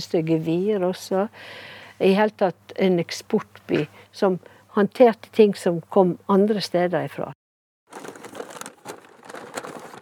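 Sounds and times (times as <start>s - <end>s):
speech: 0.0s - 8.1s
old bags for cattle goods from Bergen crinkling and rustling: 7.9s - 10.0s.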